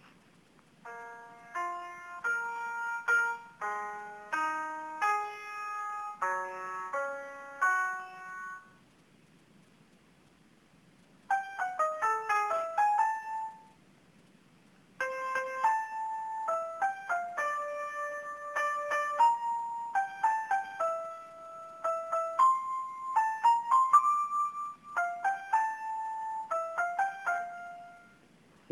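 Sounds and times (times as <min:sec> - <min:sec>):
song played on an electronic keyboard: 0:00.8 - 0:08.8, 0:11.3 - 0:13.7, 0:15.0 - 0:28.2.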